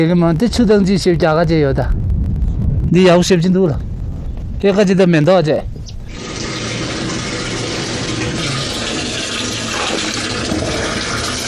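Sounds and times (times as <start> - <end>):
speech: 0.0 - 2.0, 2.9 - 3.9, 4.6 - 6.4
water running from a tap in a new home: 6.1 - 11.4.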